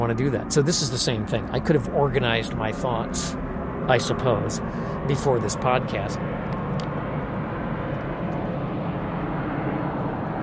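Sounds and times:
airplane flying low overhead on its descent to land: 0.0s - 10.4s
speech: 0.1s - 6.3s.

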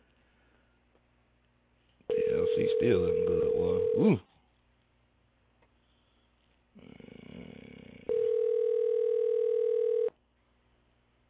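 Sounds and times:
telephone ringback tone on an outgoing call: 2.1s - 4.1s, 8.1s - 10.1s
speech: 2.8s - 3.4s, 4.0s - 4.3s.

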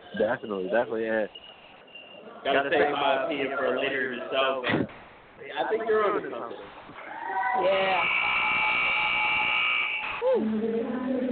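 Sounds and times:
noisy arena background: 0.0s - 11.2s
speech: 0.2s - 1.5s, 2.4s - 8.2s, 10.2s - 11.0s
basketball end-of-game buzzer droning: 7.7s - 10.2s.

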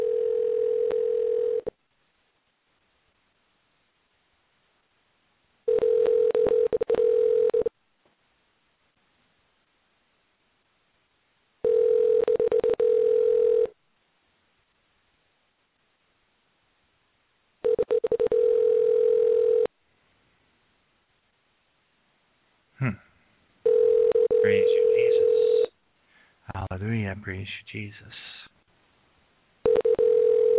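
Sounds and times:
telephone ringback tone while calling: 0.0s - 1.7s, 5.7s - 7.7s, 11.6s - 13.8s, 17.6s - 19.7s, 23.6s - 25.7s, 29.6s - 30.5s
speech: 27.3s - 28.4s.

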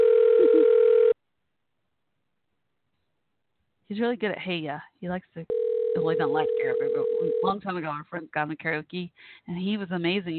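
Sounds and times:
phone call ringing tone through a telephone line: 0.0s - 1.2s, 5.5s - 7.6s
speech: 3.9s - 10.3s.

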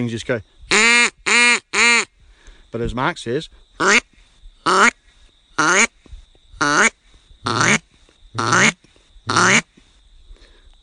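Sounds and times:
speech: 0.0s - 0.8s, 2.7s - 4.0s
handheld duck call quacks shaped by hand movements and voice: 0.7s - 2.1s, 3.8s - 4.0s, 4.7s - 5.0s, 5.6s - 5.9s, 6.6s - 7.8s, 8.4s - 9.7s.

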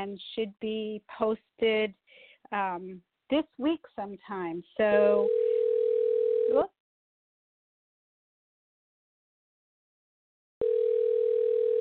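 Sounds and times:
speech: 0.0s - 5.4s, 6.5s - 6.8s
telephone ringing: 5.0s - 6.7s, 10.6s - 11.8s.

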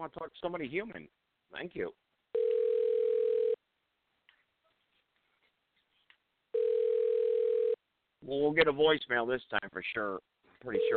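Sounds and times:
speech: 0.0s - 2.1s, 8.2s - 10.9s
telephone ringback tone while a call is being transferred: 2.4s - 3.6s, 6.6s - 7.8s.

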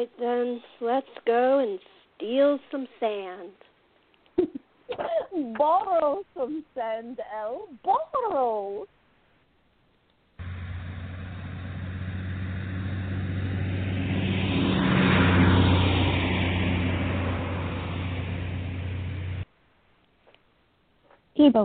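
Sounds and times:
speech: 0.0s - 3.7s, 4.4s - 9.0s, 21.4s - 21.6s
car driving with a steady low engine drone: 10.4s - 19.5s.

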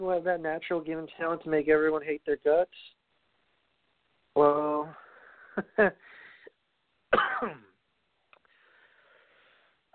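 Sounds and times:
speech: 0.0s - 3.0s, 4.4s - 5.0s, 5.6s - 6.1s, 7.1s - 7.7s
person coughing: 7.1s - 7.8s
person clearing throat: 7.2s - 7.8s.

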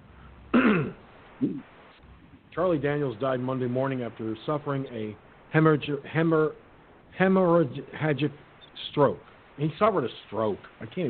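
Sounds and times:
person clearing a clogged throat: 0.5s - 1.6s
speech: 2.6s - 11.0s.

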